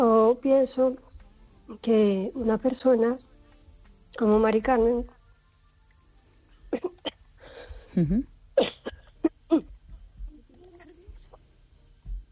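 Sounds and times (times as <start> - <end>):
speech: 0.0 - 1.1, 1.7 - 3.3, 4.1 - 5.2, 8.0 - 8.7
person coughing and choking: 6.7 - 7.2, 8.0 - 9.7
strained gasping breaths: 7.4 - 8.0.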